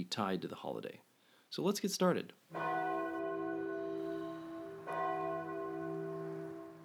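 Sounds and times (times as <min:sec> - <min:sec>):
speech: 0:00.0 - 0:02.7
church bell ringing: 0:02.5 - 0:06.8.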